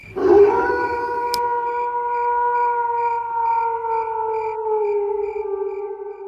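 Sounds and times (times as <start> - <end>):
faint rhythmic cricket chirps: 0.0 - 6.2
jackals howling at night: 0.0 - 6.2.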